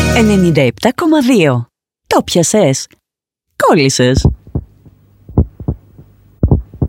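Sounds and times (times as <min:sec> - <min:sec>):
speech: 0:00.2 - 0:03.0, 0:03.6 - 0:04.4
heartbeat sound effect thumping: 0:04.1 - 0:06.8.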